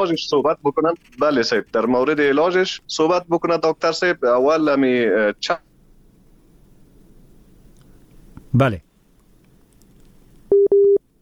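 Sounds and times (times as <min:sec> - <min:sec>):
speech: 0:00.0 - 0:05.7, 0:08.5 - 0:08.9
telephone busy tone after a dropped phone call: 0:10.5 - 0:11.0.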